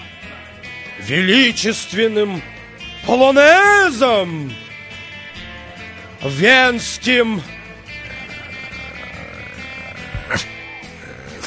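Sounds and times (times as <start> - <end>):
speech: 1.0 - 4.6, 6.2 - 7.6
dog growling with a low rumbling snarl: 7.9 - 11.4.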